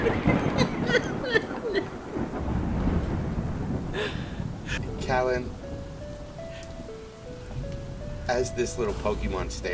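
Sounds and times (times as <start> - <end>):
steady rain: 0.0 - 9.7
faint sustained musical tones: 4.8 - 9.7
speech: 8.3 - 9.7.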